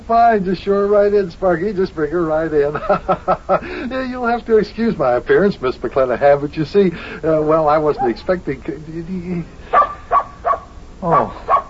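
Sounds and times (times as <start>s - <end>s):
speech: 0.1s - 9.7s, 11.0s - 11.5s
laughter: 2.6s - 4.2s
dog barking: 8.0s - 8.3s, 9.7s - 11.6s.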